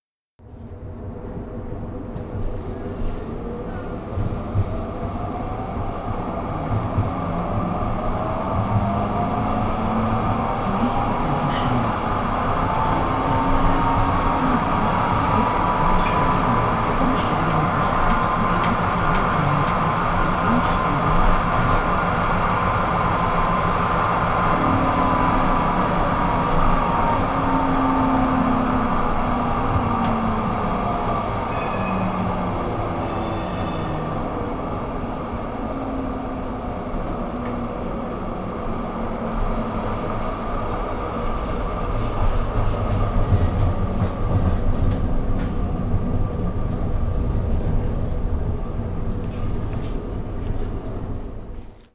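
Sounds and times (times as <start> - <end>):
P Wagen tram running: 0.4 - 51.9.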